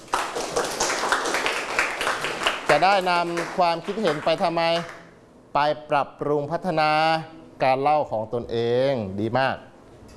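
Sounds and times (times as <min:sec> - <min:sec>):
classroom of students clapping hands: 0:00.0 - 0:05.1
speech: 0:02.8 - 0:09.7.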